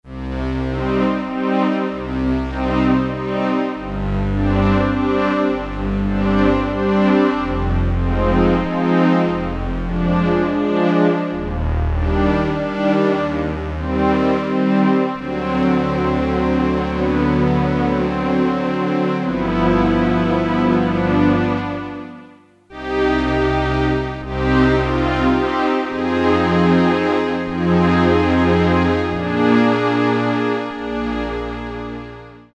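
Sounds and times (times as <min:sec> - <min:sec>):
Korg DSS-1 synth strings: 0:00.1 - 0:32.5.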